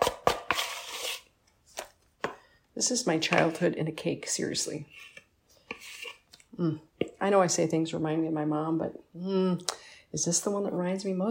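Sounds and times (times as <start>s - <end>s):
batter scraping smear: 0.0s - 1.9s, 4.8s - 6.3s
speech: 2.8s - 5.2s, 6.6s - 11.2s.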